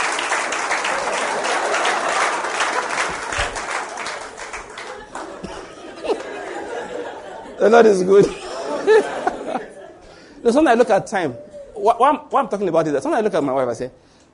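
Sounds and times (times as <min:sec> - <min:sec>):
audience clapping: 0:00.0 - 0:07.1
laughter: 0:01.0 - 0:10.2
speech: 0:07.6 - 0:08.4, 0:10.4 - 0:14.3.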